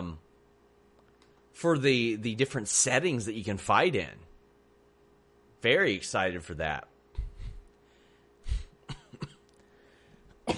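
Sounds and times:
speech: 0:01.6 - 0:04.3, 0:05.6 - 0:06.9
person coughing harshly: 0:08.5 - 0:09.5.

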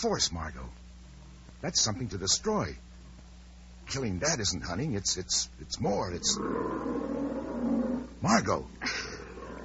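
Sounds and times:
speech: 0:00.0 - 0:00.9, 0:01.6 - 0:02.9, 0:03.9 - 0:07.2, 0:08.2 - 0:09.0
lion roaring: 0:06.2 - 0:08.2, 0:09.0 - 0:09.6.

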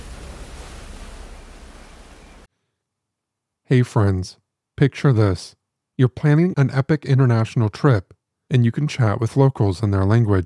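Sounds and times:
ocean waves crashing onto a beach: 0:00.0 - 0:02.5
speech: 0:03.7 - 0:10.4.

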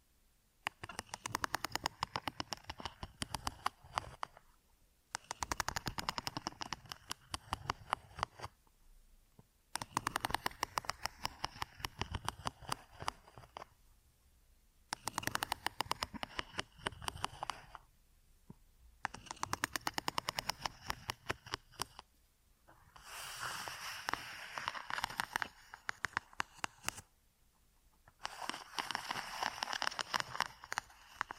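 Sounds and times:
dense scratching and crackling rubbing ear triggers: 0:00.6 - 0:04.4, 0:05.2 - 0:08.6, 0:09.7 - 0:13.7, 0:15.0 - 0:17.9, 0:19.0 - 0:22.1, 0:22.7 - 0:27.1, 0:28.0 - 0:31.3.

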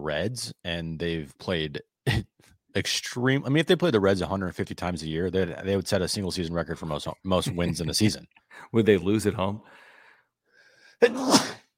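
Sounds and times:
speech: 0:00.0 - 0:09.8, 0:11.0 - 0:11.4
loud sneeze: 0:11.0 - 0:11.7.

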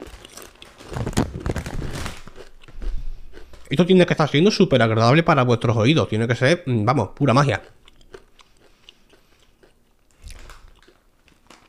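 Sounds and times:
tortilla chips being chewed: 0:00.0 - 0:03.8, 0:07.2 - 0:11.6
speech: 0:03.7 - 0:07.8.

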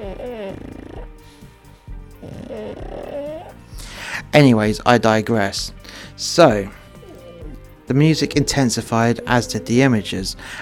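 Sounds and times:
pug snoring: 0:00.0 - 0:03.7, 0:06.7 - 0:10.6
speech: 0:04.2 - 0:06.8, 0:07.9 - 0:10.6.

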